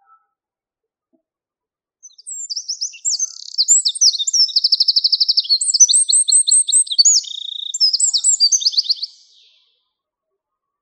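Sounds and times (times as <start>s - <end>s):
Eurasian wren singing: 2.0s - 9.7s.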